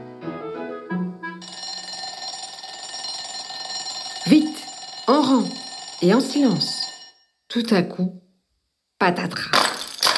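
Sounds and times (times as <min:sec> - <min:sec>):
school bell ringing: 0:01.4 - 0:07.2
speech: 0:05.2 - 0:06.8, 0:07.6 - 0:08.2, 0:09.0 - 0:09.6.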